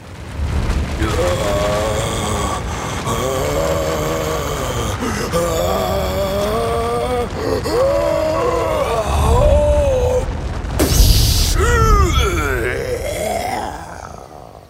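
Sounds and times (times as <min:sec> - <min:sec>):
deep dull rumbling tremor from deep underground: 0:00.0 - 0:14.3
strained groaning vocal build-up: 0:00.8 - 0:14.6
giant explosive sneeze: 0:10.8 - 0:13.7.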